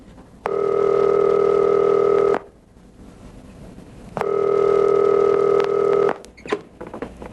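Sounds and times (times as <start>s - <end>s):
telephone ringing down a telephone line: 0.5s - 2.5s, 4.2s - 6.2s.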